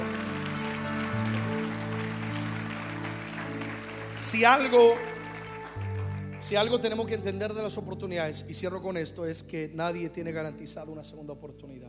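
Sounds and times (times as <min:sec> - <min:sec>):
crowd applauding: 0:00.0 - 0:07.3
sustained held keyboard chord: 0:00.0 - 0:09.2
speech: 0:04.2 - 0:05.1, 0:06.4 - 0:11.8.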